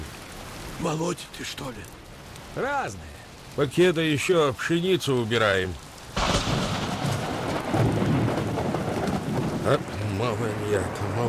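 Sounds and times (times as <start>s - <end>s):
heavy rain: 0.0s - 11.2s
speech: 0.8s - 2.0s, 2.6s - 6.3s, 9.6s - 11.2s
deep thunder rumbling: 6.2s - 11.2s.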